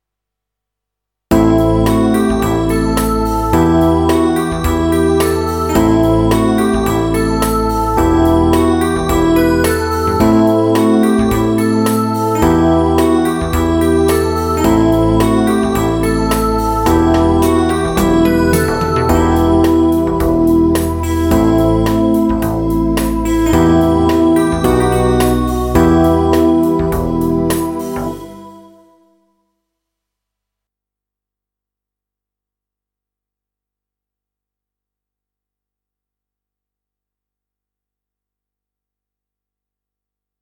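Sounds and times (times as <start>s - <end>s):
crystal synth riff in E minor: 1.4s - 28.8s.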